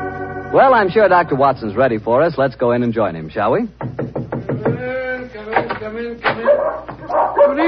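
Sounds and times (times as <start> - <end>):
speech: 0.6 - 4.0, 5.8 - 7.6
dogs barking excitedly at night: 6.4 - 7.6.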